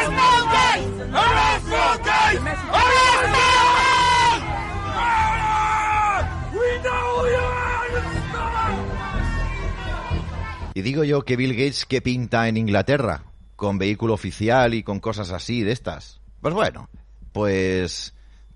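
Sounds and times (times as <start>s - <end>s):
large crowd of protesters shouting a rhythmic chant in England: 0.0s - 10.7s
repeated bursts of yelling voices: 0.0s - 10.7s
speech: 10.8s - 18.2s.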